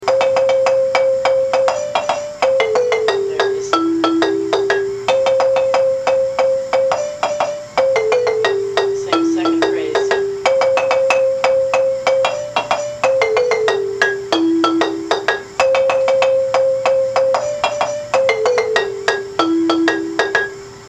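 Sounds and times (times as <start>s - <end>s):
low marimba lead: 0.0s - 20.6s.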